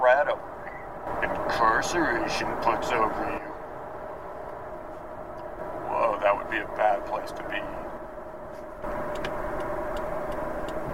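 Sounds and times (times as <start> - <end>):
speech: 0.1 - 0.6, 1.6 - 3.5, 6.6 - 7.9
low car engine hum inside the vehicle: 0.2 - 10.9
car turn signal blinker clicking: 8.8 - 10.9.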